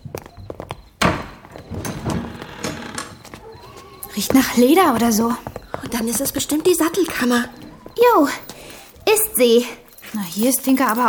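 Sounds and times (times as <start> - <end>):
door pushed open with a thump: 1.0 - 3.6
speech: 4.2 - 8.5, 9.4 - 11.0.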